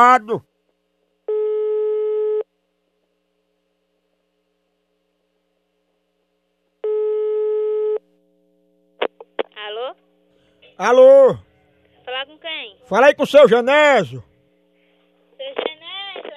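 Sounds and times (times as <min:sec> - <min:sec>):
speech: 0:00.0 - 0:00.5, 0:10.8 - 0:11.5, 0:12.1 - 0:14.3
faint low hum: 0:00.0 - 0:16.3
telephone ringback tone on an outgoing call: 0:01.3 - 0:02.4, 0:06.8 - 0:08.0.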